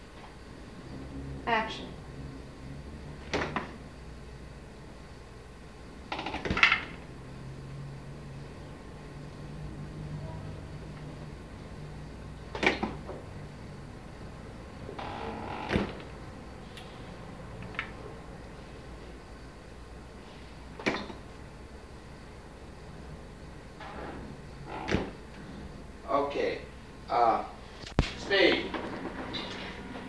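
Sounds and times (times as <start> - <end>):
faint low hum: 0.0 - 30.0
speech: 1.5 - 2.0
refrigerator door opening and closing: 3.2 - 3.8, 6.1 - 7.0, 12.5 - 13.2, 14.8 - 16.2, 20.8 - 21.3, 23.8 - 25.8, 28.5 - 29.9.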